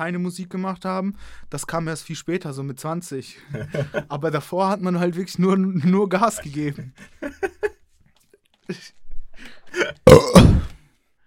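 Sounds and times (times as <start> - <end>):
speech: 0.0 - 7.6, 8.7 - 9.0
laughter: 3.5 - 4.1, 6.7 - 7.8
loud burp: 9.8 - 10.8
person making short vocal noises and grunts: 9.8 - 10.8.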